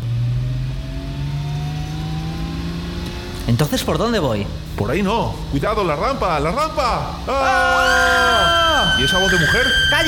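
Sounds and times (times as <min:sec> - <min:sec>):
motorcycle engine accelerating in a getaway: 0:00.0 - 0:03.5
speech: 0:03.5 - 0:10.0.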